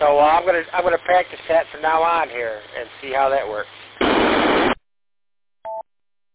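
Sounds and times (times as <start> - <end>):
speech: 0.0 - 4.7
harsh radio static: 0.0 - 4.8.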